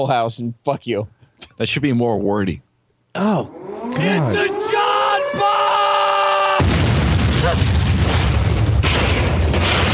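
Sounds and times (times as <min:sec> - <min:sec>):
speech: 0:00.0 - 0:05.6
steady tone from a soundboard: 0:03.2 - 0:05.9
bomb explosion effect from a soundboard: 0:06.6 - 0:09.9.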